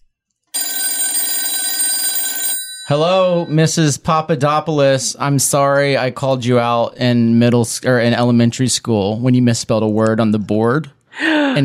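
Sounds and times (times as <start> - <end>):
telephone bell ringing with a bright metallic clatter: 0.5 - 3.8
speech: 2.9 - 11.6.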